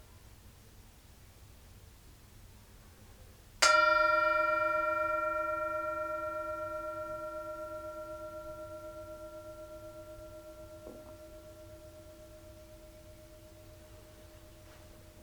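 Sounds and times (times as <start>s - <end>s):
single bell ringing with a clear layered tone: 3.6s - 15.2s.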